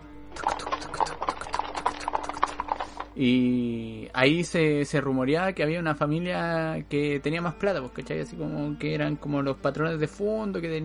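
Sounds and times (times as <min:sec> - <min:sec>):
horse hooves clip-clopping on a hard surface: 0:00.4 - 0:03.1
speech: 0:03.2 - 0:10.8.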